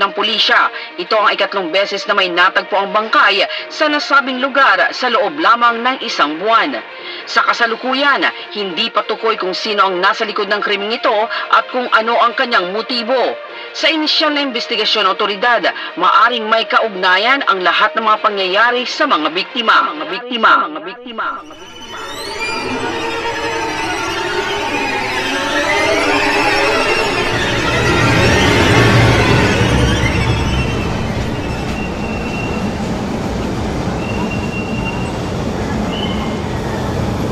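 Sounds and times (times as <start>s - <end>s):
speech: 0.0s - 22.8s
indistinct voices: 21.0s - 36.3s
light rail train wheels squealing and screeching at a station: 21.4s - 33.0s, 33.9s - 37.3s.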